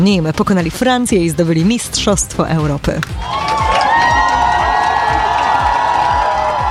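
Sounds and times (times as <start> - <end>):
speech: 0.0 - 3.6
rhythmic low drum thumps: 2.6 - 6.6
large crowd cheering and shouting to welcome a national volleyball team: 3.2 - 6.6.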